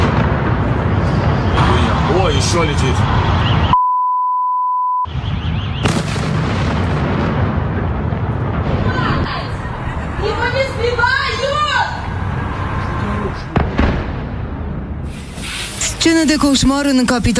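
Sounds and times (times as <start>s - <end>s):
explosions during a missile attack on Kyiv, Ukraine: 0.0s - 3.7s, 5.1s - 15.4s
speech: 2.4s - 3.4s, 16.0s - 17.3s
electronic bleep: 3.7s - 5.1s.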